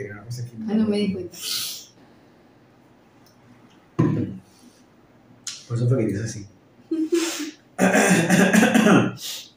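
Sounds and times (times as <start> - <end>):
speech: 0.0 - 1.7, 5.7 - 6.6
person coughing with a rough raspy burst: 7.8 - 9.2
short throaty vocal noises: 7.8 - 9.2.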